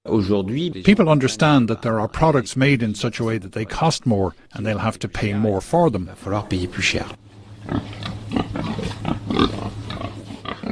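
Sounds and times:
speech: 0:00.1 - 0:08.4, 0:09.4 - 0:09.7
steady low hum: 0:00.2 - 0:10.7
pigs raised on straw on a farm grunting and snorting: 0:07.5 - 0:10.7.

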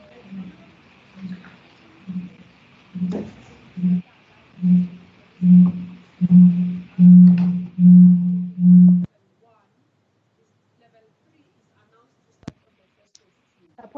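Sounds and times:
microphone feedback howl: 0:02.1 - 0:02.4, 0:03.0 - 0:04.0, 0:04.6 - 0:09.1.

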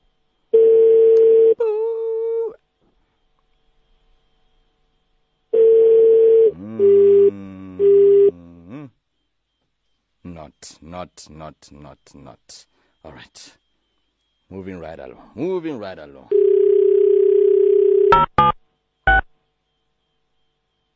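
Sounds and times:
telephone line tones during an international call: 0:00.5 - 0:01.6, 0:05.5 - 0:08.4, 0:16.2 - 0:19.3
speech: 0:10.6 - 0:13.6, 0:14.5 - 0:16.4.

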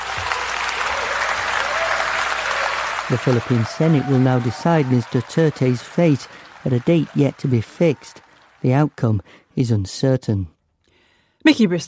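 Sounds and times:
legislators applauding in parliament after endorsing an impeachment motion: 0:00.0 - 0:09.6
speech: 0:03.1 - 0:10.5, 0:11.4 - 0:11.8.

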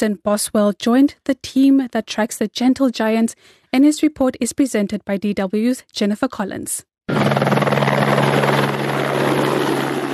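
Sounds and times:
speech: 0:00.0 - 0:07.7
helicopter rotor beating in a rapid even chop: 0:07.1 - 0:10.1.

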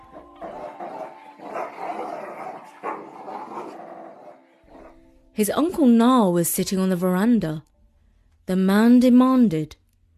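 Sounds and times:
several dogs tied up by rope snarling and barking aggressively: 0:00.0 - 0:05.0
speech: 0:05.4 - 0:07.7, 0:08.5 - 0:09.8.

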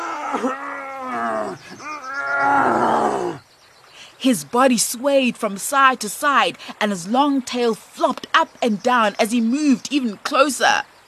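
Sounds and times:
crocodile roaring in pain after being hit in the eye by a bow: 0:00.0 - 0:03.4
speech: 0:00.3 - 0:02.6, 0:04.2 - 0:10.9.

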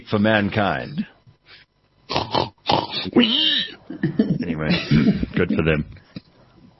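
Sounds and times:
speech: 0:00.1 - 0:01.1, 0:03.0 - 0:06.0
pig grunting: 0:02.1 - 0:03.7.

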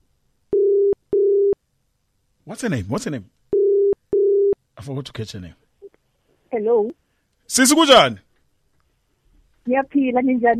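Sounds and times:
phone ringback tone on an outgoing call: 0:00.6 - 0:01.6, 0:03.6 - 0:04.6
speech: 0:02.5 - 0:03.4, 0:04.8 - 0:05.6, 0:06.6 - 0:08.3, 0:09.6 - 0:10.5.

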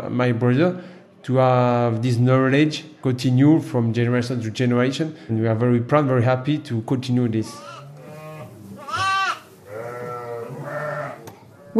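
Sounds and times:
speech: 0:00.0 - 0:07.8
lambs bleating in a barn on a sheep farm: 0:07.5 - 0:11.7.

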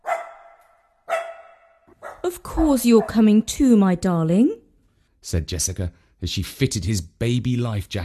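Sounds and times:
dog barking excitedly: 0:00.0 - 0:02.3, 0:02.9 - 0:03.3
speech: 0:02.2 - 0:04.6, 0:05.2 - 0:08.0.

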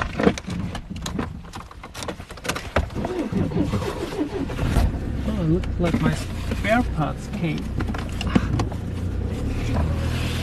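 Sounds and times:
car clunks and rattles on a rough track: 0:00.0 - 0:10.4
farm car engine droning on a rough track: 0:02.9 - 0:10.4
speech: 0:05.5 - 0:08.0.

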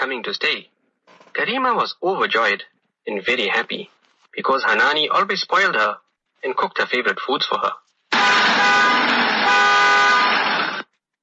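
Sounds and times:
speech: 0:00.1 - 0:00.7, 0:01.4 - 0:07.8
car horn honking in a driveway: 0:08.1 - 0:10.9.

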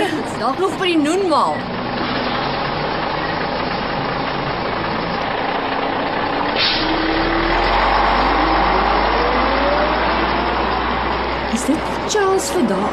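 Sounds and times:
heavy bus engine rumbling and idling: 0:00.0 - 0:12.9
speech: 0:00.4 - 0:01.8, 0:11.6 - 0:12.9
bus air brakes hissing: 0:06.6 - 0:07.0.

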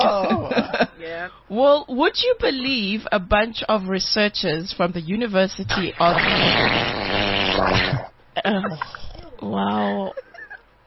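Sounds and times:
speech: 0:00.8 - 0:10.3
wet diarrhea fart sound effect: 0:05.9 - 0:08.1.

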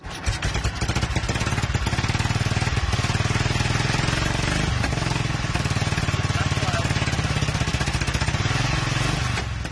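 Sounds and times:
1936 Royal Enfield motorcycle engine starting and chugging: 0:00.0 - 0:09.7.

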